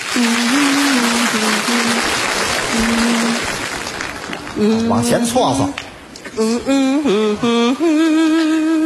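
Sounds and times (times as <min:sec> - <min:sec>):
audience applauding an acrobat's jar-juggling trick: 0:00.0 - 0:06.0
speech: 0:00.2 - 0:00.8, 0:04.6 - 0:05.8, 0:06.4 - 0:08.7.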